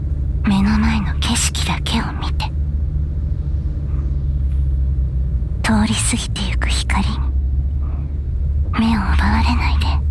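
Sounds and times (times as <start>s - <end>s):
car engine rumbling: 0.0s - 10.0s
speech: 1.4s - 2.5s, 5.8s - 7.2s.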